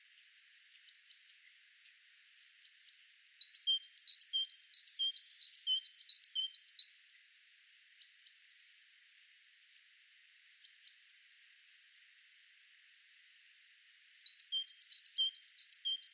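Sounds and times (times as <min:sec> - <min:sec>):
Great tit calls in fast bright phrases: 0:03.4 - 0:06.9, 0:14.3 - 0:16.1.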